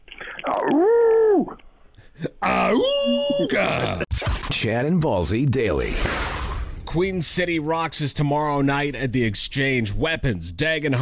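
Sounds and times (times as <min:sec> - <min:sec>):
person imitating a wolf howl: 0:00.5 - 0:01.6, 0:02.4 - 0:04.0
speech: 0:02.4 - 0:11.0.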